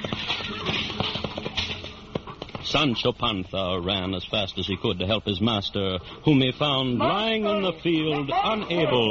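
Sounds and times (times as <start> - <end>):
horse galloping toward a windmill: 0.0 - 5.6
speech: 2.7 - 9.0.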